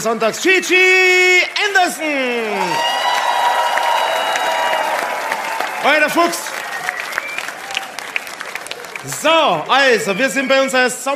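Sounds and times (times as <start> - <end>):
speech: 0.0 - 3.0, 5.8 - 6.4, 9.0 - 11.1
steady sustained audience applause: 1.1 - 10.7
rising whoop-like cheer: 2.0 - 10.7.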